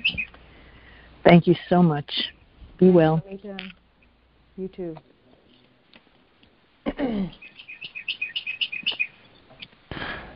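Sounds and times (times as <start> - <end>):
swooping bird call: 0.0 - 0.3, 7.4 - 9.2
birds chirping and singing: 0.0 - 0.4, 7.3 - 9.6
speech: 1.2 - 3.8, 4.6 - 5.1, 7.0 - 7.5.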